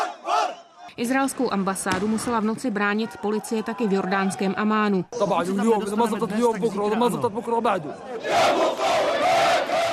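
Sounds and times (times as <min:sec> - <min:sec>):
crowd of protesters chanting in unison: 0:00.0 - 0:01.0, 0:07.8 - 0:09.9
speech: 0:01.0 - 0:08.9.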